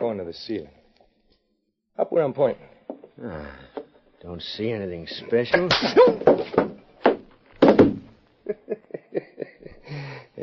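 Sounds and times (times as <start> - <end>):
speech: 0.0 - 0.8, 2.0 - 6.8
punches landing on a jaw with heavy thuds: 5.6 - 8.1
laughter: 8.4 - 10.2.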